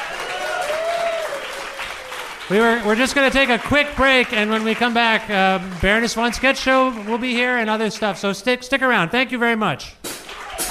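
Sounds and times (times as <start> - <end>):
audience applause: 0.0 - 7.4
speech: 2.5 - 10.0.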